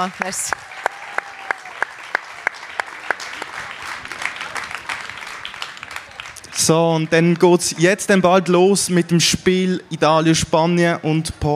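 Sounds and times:
speech: 0.0 - 0.8, 6.6 - 11.5
audience applauding: 0.0 - 8.5.

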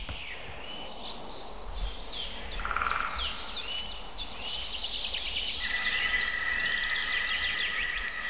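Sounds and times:
dawn chorus of smaller birds twittering and chirping outdoors: 0.0 - 8.2
green woodpecker calling: 2.5 - 8.2.

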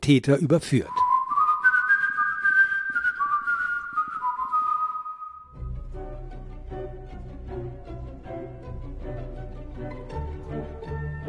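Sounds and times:
speech: 0.0 - 1.0
person whistling a classical tune: 0.9 - 5.6.

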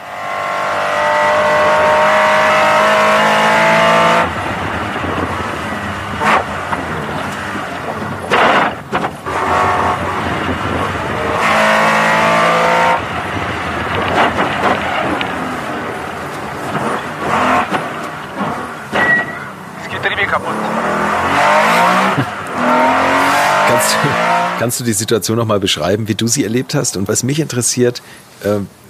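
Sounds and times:
race car engine howling and revving, onboard: 0.0 - 24.9
harsh grinding, clattering and squealing noises from a race car: 4.9 - 24.6
speech: 24.8 - 28.8.

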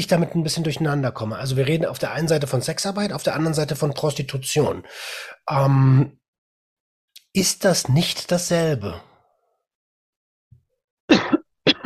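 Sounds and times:
speech: 0.0 - 6.2, 7.4 - 9.1
person coughing forcefully: 11.1 - 11.8.

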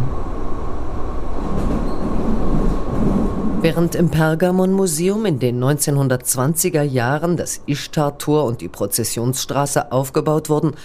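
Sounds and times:
subway train rumbling at station: 0.0 - 7.8
speech: 3.6 - 10.8.

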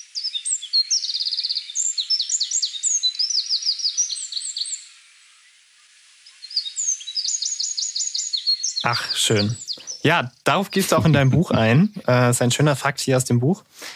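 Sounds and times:
Eurasian wren singing rapid high trills: 0.0 - 4.9, 6.3 - 12.4
speech: 8.8 - 13.8
laughter: 8.9 - 12.2.

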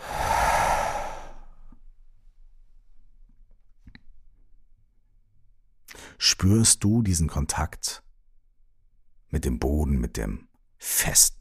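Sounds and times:
deep breathy exhale: 0.0 - 1.6
speech: 6.2 - 8.0, 9.3 - 11.4.

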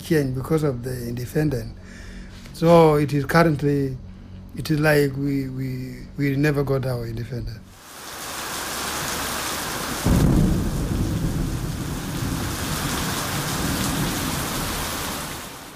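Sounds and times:
speech: 0.1 - 4.0, 4.6 - 7.6
heavy rain pouring in the rainy season: 7.7 - 15.7
deep rumbling roll of thunder: 9.8 - 15.7.

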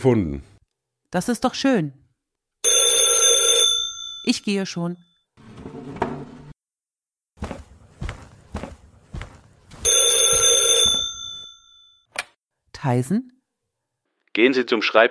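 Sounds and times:
speech: 0.0 - 0.5, 1.1 - 2.0, 4.2 - 5.1, 12.8 - 13.4, 14.4 - 15.0
loud metallic telephone bell ringing: 2.6 - 4.5, 9.8 - 12.1
footsteps: 7.4 - 11.5.

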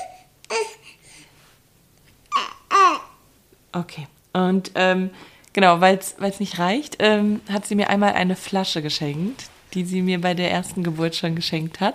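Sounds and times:
baby babbling: 0.0 - 1.0, 2.3 - 3.2
speech: 3.8 - 11.9.

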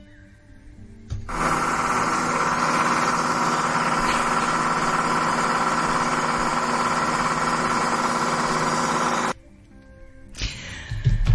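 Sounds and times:
tractor engine rumbling: 1.3 - 9.4.

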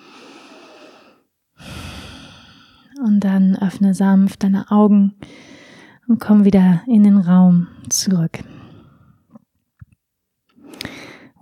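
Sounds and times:
deep breathing in and out during a guided relaxation: 0.0 - 2.9, 5.2 - 6.0, 7.7 - 9.4, 10.6 - 11.4
speech: 3.0 - 5.5, 6.1 - 8.6.

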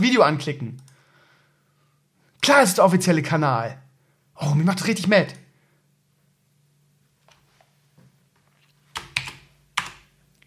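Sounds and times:
speech: 0.0 - 0.8, 2.4 - 3.8, 4.4 - 5.4
computer keyboard keystrokes: 8.9 - 10.1.

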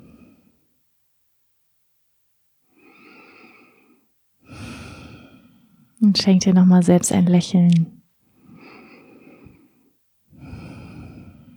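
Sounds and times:
deep slow breathing during a guided relaxation exercise: 2.7 - 6.0, 8.3 - 11.5
speech: 6.1 - 8.0.

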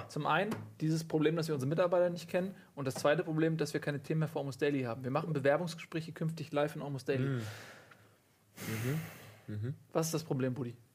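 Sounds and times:
speech: 0.1 - 7.8, 8.6 - 10.8
heavy huffing breath through the nose: 8.6 - 9.6.

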